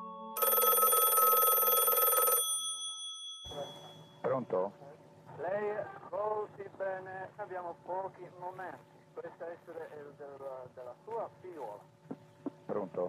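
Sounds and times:
telephone bell ringing: 0.3s - 4.2s
speech: 4.4s - 4.8s, 5.4s - 11.9s, 12.7s - 13.0s.

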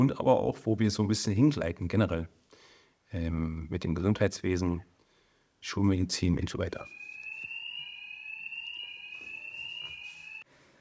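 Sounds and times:
speech: 0.0s - 2.4s, 3.1s - 4.9s, 5.6s - 7.0s
hospital fire alarm set off by cooking food: 6.7s - 10.5s.

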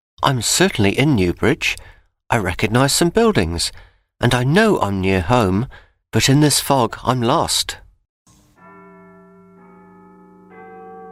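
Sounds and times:
speech: 0.2s - 7.8s
church bell tolling at midnight: 8.3s - 11.0s.

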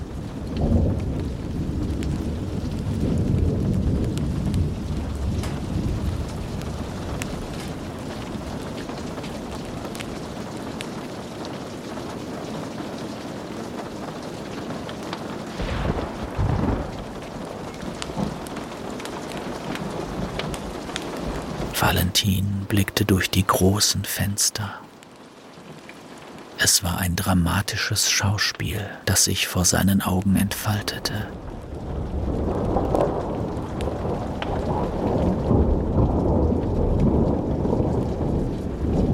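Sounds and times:
steady rain: 0.0s - 39.1s
deep rolling thunder over the land: 0.1s - 7.6s, 15.5s - 18.7s, 31.4s - 39.1s
speech: 21.9s - 24.9s, 26.6s - 31.5s.

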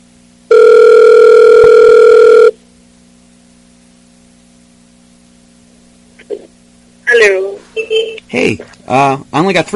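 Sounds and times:
quiet phone line hiss: 0.5s - 2.6s
telephone ringback tone: 0.5s - 2.6s
speech: 8.3s - 9.7s.

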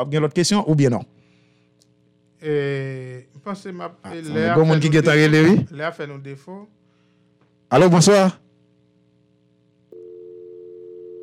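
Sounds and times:
speech: 0.0s - 1.2s, 2.4s - 6.8s, 7.7s - 8.4s
telephone dial tone after a dropped call: 10.0s - 11.2s.

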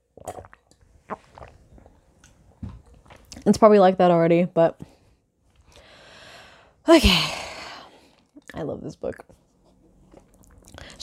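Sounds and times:
person sipping and swallowing water: 0.0s - 3.4s, 9.9s - 11.0s
speech: 3.5s - 4.9s, 6.9s - 7.4s, 8.7s - 9.3s.

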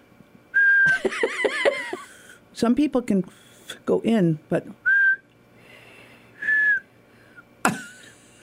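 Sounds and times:
person attempting to whistle: 0.6s - 1.0s, 4.9s - 5.2s, 6.4s - 7.5s
laughter: 0.9s - 2.3s
speech: 1.0s - 1.4s, 2.6s - 4.8s
breathy puffs of air: 5.5s - 7.5s.

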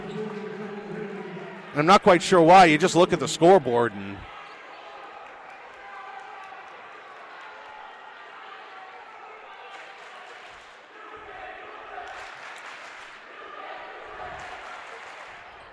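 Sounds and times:
gym crowd murmuring and calling out: 0.0s - 4.6s
speech: 1.8s - 4.3s.

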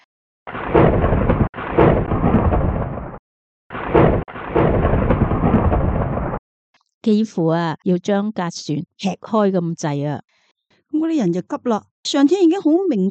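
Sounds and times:
loud thunder rolling with sharp cracks: 0.5s - 6.4s
speech: 7.0s - 13.0s.

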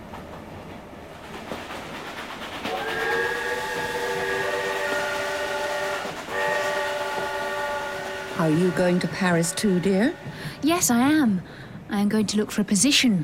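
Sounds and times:
passenger train bound for Paris rumbling: 0.0s - 13.2s
passenger train horn blasts: 2.7s - 10.6s
speech: 8.4s - 13.2s.

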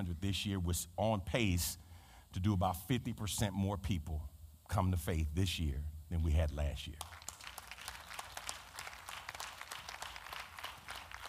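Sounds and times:
speech: 0.0s - 7.2s
crowd applauding: 7.0s - 11.2s.

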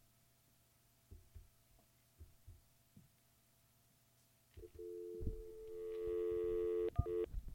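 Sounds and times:
telephone dial tone: 4.6s - 7.3s
telephone keypad beeps with paired tones: 5.5s - 7.3s.

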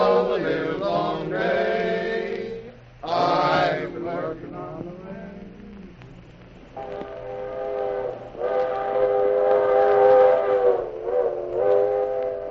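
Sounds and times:
steady mechanical rumble of small steam locomotive: 0.0s - 3.1s, 3.8s - 12.4s
small steam locomotive shrill whistle in a railroad yard: 6.8s - 12.4s.

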